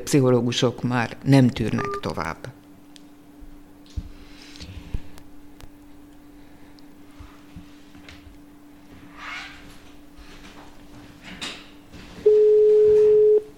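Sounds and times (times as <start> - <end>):
speech: 0.0 - 2.6
telephone ringing: 12.3 - 13.5.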